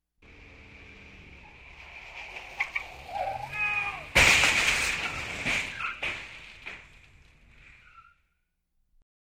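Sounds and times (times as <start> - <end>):
car crash: 0.2 - 8.3
man shouting: 3.5 - 4.2.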